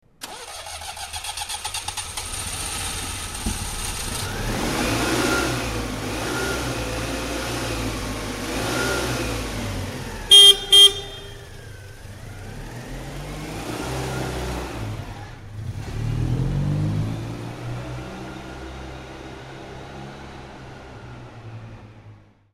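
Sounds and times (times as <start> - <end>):
Citroen 2CV car engine starting and accelerating: 0.2 - 22.5.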